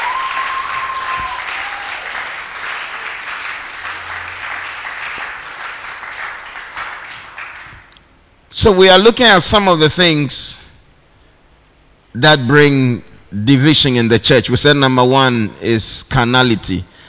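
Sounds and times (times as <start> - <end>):
crowd clapping: 0.0 - 8.0
speech: 8.6 - 10.5, 12.2 - 16.9.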